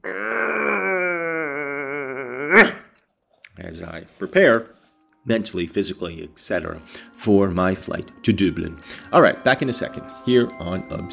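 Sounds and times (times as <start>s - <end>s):
person yawning aloud while stretching: 0.0s - 3.0s
speech: 3.8s - 11.1s.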